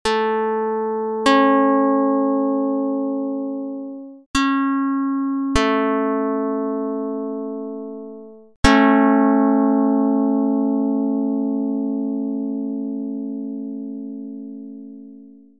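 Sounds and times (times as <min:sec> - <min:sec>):
plucked note: 0:00.0 - 0:15.5.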